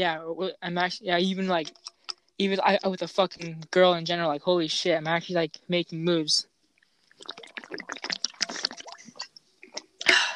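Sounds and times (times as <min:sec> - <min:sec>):
speech: 0:00.0 - 0:06.5, 0:07.2 - 0:08.6
person slurping and gulping lemon water: 0:01.6 - 0:02.3, 0:07.0 - 0:10.3.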